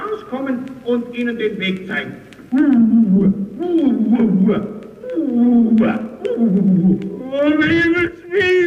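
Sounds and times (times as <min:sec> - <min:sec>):
speech: 0:00.3 - 0:08.6
voice imitating a lion roaring: 0:02.5 - 0:08.2.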